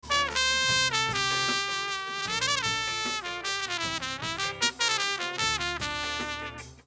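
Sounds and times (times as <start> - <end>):
trumpet: 0.0 - 6.8.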